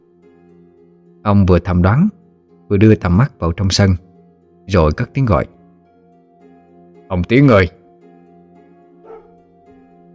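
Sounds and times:
speech: 1.2s - 4.1s, 4.7s - 5.6s, 7.1s - 7.8s
faint dog barking in the distance: 9.0s - 9.5s.

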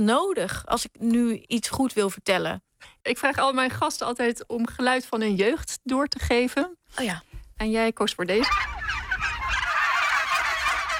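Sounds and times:
speech: 0.0s - 9.2s
turkeys gobbling in a meadow behind a dike near Goes: 8.4s - 10.9s.

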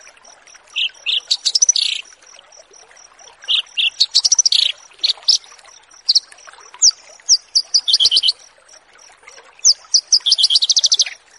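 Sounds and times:
bush lark song: 0.8s - 2.0s, 3.5s - 5.4s, 6.1s - 8.4s, 9.6s - 11.2s.

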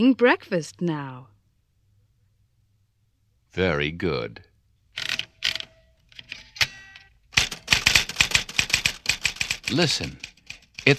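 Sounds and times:
speech: 0.0s - 1.3s, 3.5s - 4.5s, 9.7s - 10.3s
typing in an office: 5.0s - 10.9s.

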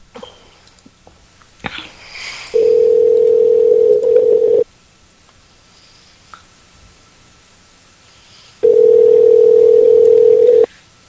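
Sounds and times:
electronic ring tone of an outgoing phone call through the handset: 2.6s - 4.6s, 8.6s - 10.7s.

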